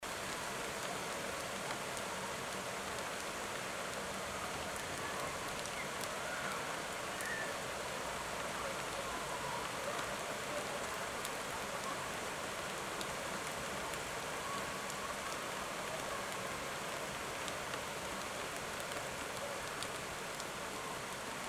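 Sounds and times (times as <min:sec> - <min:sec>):
rain: 0:00.0 - 0:21.4.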